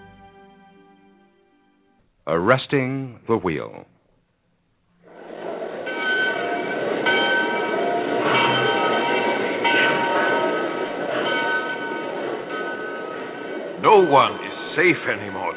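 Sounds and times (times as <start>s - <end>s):
speech: 2.3s - 4.0s, 13.9s - 15.5s
train rumbling on railway: 5.0s - 15.5s
train wheels clattering on the rails: 5.0s - 15.5s.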